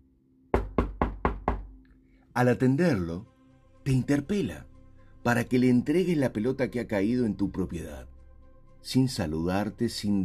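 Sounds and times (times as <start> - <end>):
firm knocking on a front door: 0.6 - 1.8
speech: 2.4 - 3.3, 3.9 - 8.1, 8.8 - 10.2.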